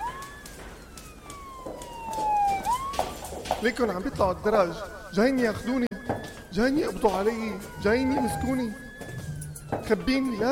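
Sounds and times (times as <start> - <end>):
low rumble of street noise: 0.0 - 10.5
police car siren wailing: 0.0 - 10.5
speech: 3.6 - 5.9, 6.6 - 8.9, 9.9 - 10.5.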